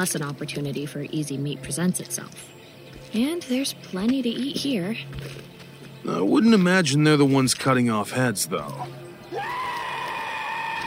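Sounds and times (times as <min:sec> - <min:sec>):
speech: 0:00.0 - 0:09.6
long piercing scream: 0:09.3 - 0:10.8.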